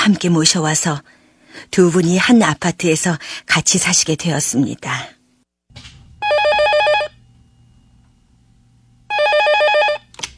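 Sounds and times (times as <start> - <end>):
speech: 0.0 - 5.2
telephone bell ringing: 6.2 - 7.2, 9.1 - 10.1.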